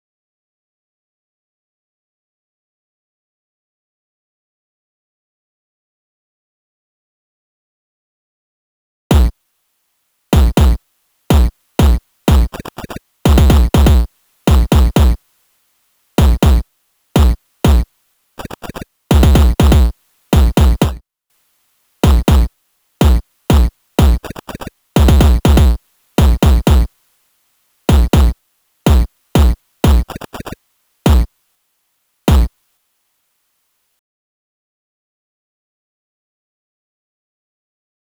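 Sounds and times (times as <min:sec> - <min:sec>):
kicks: 0:09.1 - 0:09.3, 0:10.4 - 0:15.2, 0:16.2 - 0:16.6, 0:17.2 - 0:17.8, 0:18.4 - 0:21.0, 0:22.0 - 0:26.9, 0:27.9 - 0:30.5, 0:31.1 - 0:31.3, 0:32.3 - 0:32.5.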